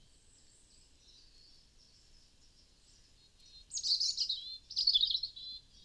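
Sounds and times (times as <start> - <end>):
European robin Erithacus rubecula singing tinkling warbled phrases: 3.4 - 5.7.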